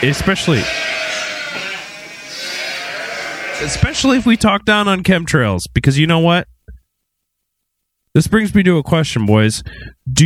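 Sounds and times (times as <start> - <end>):
speech: 0.0 - 1.0, 3.6 - 6.5, 8.2 - 10.2
person imitating a sheep bleating: 0.0 - 4.4
hiss: 0.0 - 10.2.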